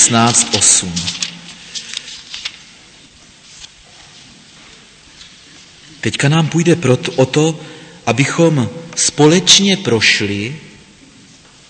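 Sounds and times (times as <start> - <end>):
speech: 0.0 - 1.3, 6.0 - 10.7
pages of a small book being flipped: 0.0 - 2.8, 3.4 - 5.8.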